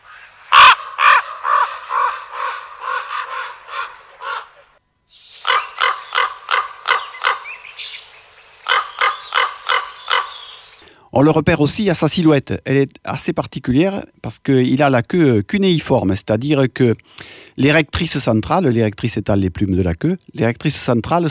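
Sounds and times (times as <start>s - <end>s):
northern raven calling: 0.0s - 11.1s
speech: 11.2s - 21.2s.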